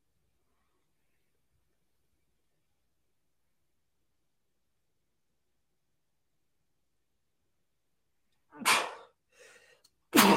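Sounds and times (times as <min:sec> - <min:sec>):
loud forceful sneeze: 0:08.5 - 0:09.2, 0:10.1 - 0:10.3.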